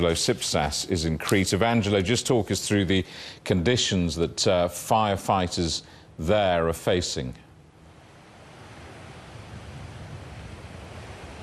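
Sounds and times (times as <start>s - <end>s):
speech: 0.0s - 7.4s
crashing coastal waves: 7.8s - 11.4s
strong wind roaring on coast: 7.8s - 11.4s
gusts buffeting the microphone: 8.2s - 11.4s.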